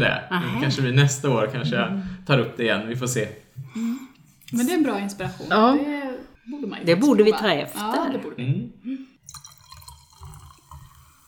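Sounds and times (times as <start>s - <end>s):
speech: 0.0s - 3.9s, 4.5s - 9.0s
champagne being poured into a glass: 9.2s - 11.2s.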